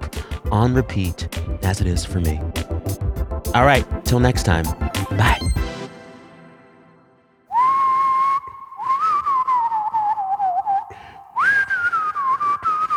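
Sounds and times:
speech: 0.5 - 2.7, 3.5 - 5.6
person whistling a TV theme tune: 7.5 - 12.9.

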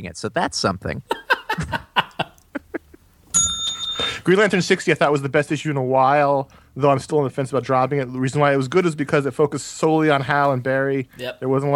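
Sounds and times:
speech: 0.0 - 1.9, 4.2 - 11.7
laughter: 1.1 - 3.0
bright ringing bell: 3.3 - 4.5.

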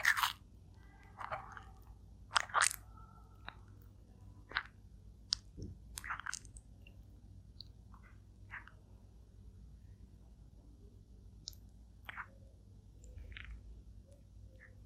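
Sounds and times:
turtle eating with sharp crunches and wet snaps: 0.0 - 3.7, 4.4 - 6.6, 13.1 - 13.7
low steady hum: 0.0 - 14.8.

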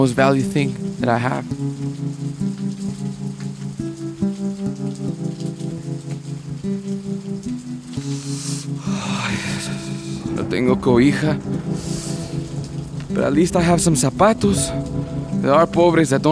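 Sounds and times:
speech: 0.0 - 2.5, 10.4 - 12.0, 13.1 - 16.2
rain pattering on a surface: 0.0 - 16.2
low sustained musical tones: 0.6 - 16.2.

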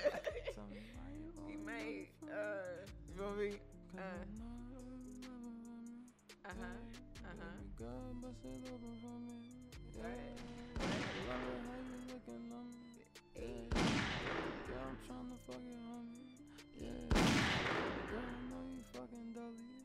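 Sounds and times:
laughter: 0.0 - 1.0
looping music beat: 0.0 - 19.8
speech: 1.8 - 4.4, 15.5 - 16.2
gunshot sound effects: 10.6 - 11.9, 13.7 - 14.9, 17.1 - 18.4.

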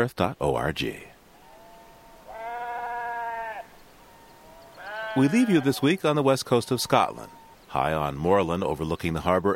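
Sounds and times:
speech: 0.0 - 1.1, 5.2 - 9.5
sheep bleating on moorland overlooking the harbor at Arisaig in Scotland: 1.4 - 7.6.

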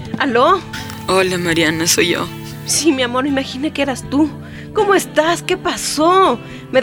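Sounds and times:
speech: 0.3 - 6.8
telephone ringing with a repeating electronic chime: 0.7 - 2.7.

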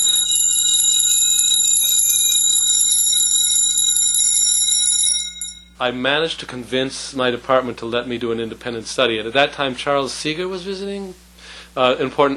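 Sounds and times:
detuned copper chimes played with slow tremolo: 0.0 - 5.8
speech: 5.8 - 12.3.

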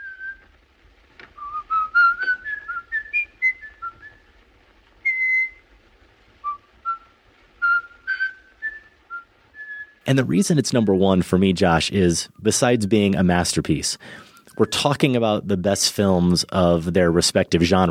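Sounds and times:
man whistling a classical melody: 0.0 - 0.4, 1.4 - 4.3, 5.0 - 5.6, 6.4 - 10.0
speech: 10.1 - 17.9.

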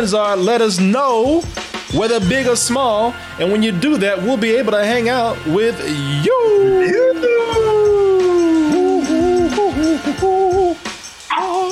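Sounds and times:
speech: 0.0 - 7.4
female dog howling: 8.6 - 11.7.

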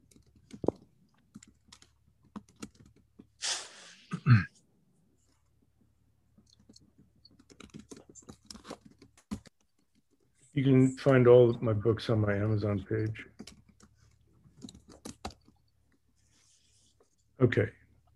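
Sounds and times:
typing on a computer keyboard: 0.0 - 3.3, 6.4 - 10.1, 13.2 - 15.8
speech: 10.6 - 13.3, 17.5 - 17.8.

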